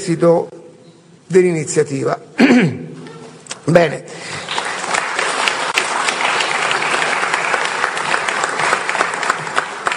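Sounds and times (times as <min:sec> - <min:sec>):
speech: 0:00.0 - 0:00.6, 0:01.3 - 0:02.8, 0:03.6 - 0:04.4
large audience applauding in a hall: 0:04.4 - 0:09.9.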